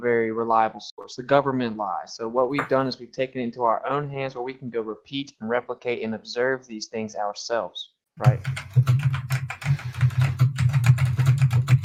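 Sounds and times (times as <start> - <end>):
speech: 0.0 - 10.0
typewriter keys clacking: 8.2 - 11.8.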